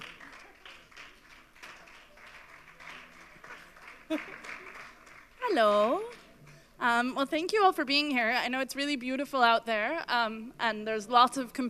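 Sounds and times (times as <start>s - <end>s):
crowd clapping as a speaker takes the stage: 0.0s - 6.6s
speech: 4.1s - 4.5s, 5.5s - 6.2s, 6.8s - 11.6s.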